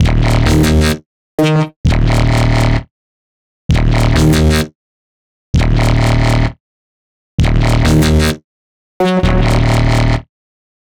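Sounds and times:
D minor sharp synth bass: 0:00.0 - 0:01.0, 0:01.9 - 0:02.8, 0:03.7 - 0:04.7, 0:05.6 - 0:06.5, 0:07.4 - 0:08.3, 0:09.0 - 0:10.3
complex electro synths: 0:09.2 - 0:10.2.

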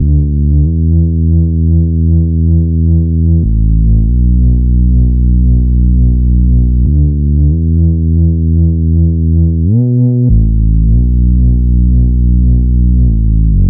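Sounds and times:
140 BPM bass loop in G major and D major: 0:00.0 - 0:13.6.

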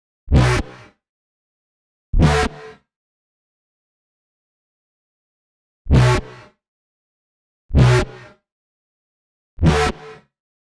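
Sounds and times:
bass in B minor: 0:00.3 - 0:00.7, 0:02.2 - 0:02.6, 0:05.9 - 0:06.3, 0:07.7 - 0:08.1, 0:09.6 - 0:10.0.

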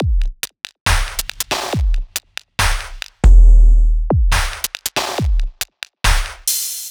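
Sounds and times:
dubstep drum loop: 0:00.0 - 0:06.8.

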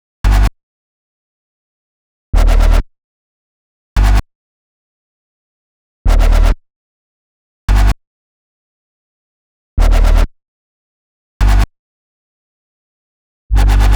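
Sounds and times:
G bass: 0:00.2 - 0:00.5, 0:02.4 - 0:02.8, 0:04.0 - 0:04.2, 0:06.1 - 0:06.6, 0:07.7 - 0:08.0, 0:09.8 - 0:10.3, 0:11.4 - 0:11.7, 0:13.5 - 0:13.9
complex electro synths: 0:13.5 - 0:13.9.

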